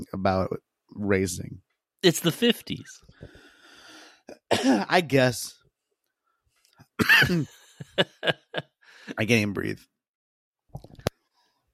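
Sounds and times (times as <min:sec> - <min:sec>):
speech: 0:00.1 - 0:03.1, 0:04.3 - 0:05.6, 0:07.0 - 0:09.9
person coughing: 0:04.3 - 0:05.0, 0:07.0 - 0:07.6
laughter: 0:07.0 - 0:08.8.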